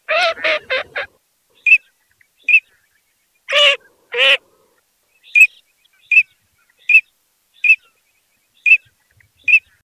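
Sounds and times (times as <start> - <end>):
teal duck calling: 0.0 - 2.8, 3.5 - 4.5, 5.3 - 7.9, 8.6 - 9.8.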